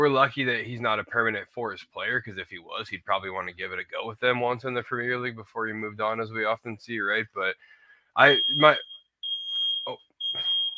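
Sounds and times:
speech: 0:00.0 - 0:08.9, 0:09.8 - 0:10.5
smoke alarm beeping: 0:08.2 - 0:10.7.

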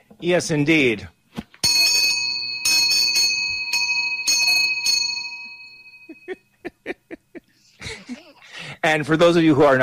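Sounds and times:
speech: 0:00.2 - 0:01.2, 0:08.8 - 0:09.8
genuine Swiss cowbell from Switzerland ringing: 0:01.6 - 0:06.5.

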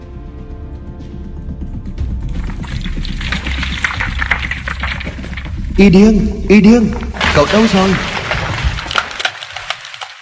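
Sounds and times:
rocks tumbling down a cliff face: 0:02.3 - 0:05.8, 0:06.9 - 0:10.2
speech: 0:05.8 - 0:08.1.

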